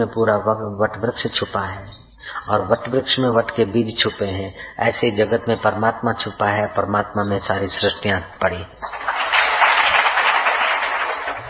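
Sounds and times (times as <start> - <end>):
speech: 0.0 - 8.9
audience clapping: 8.8 - 11.4.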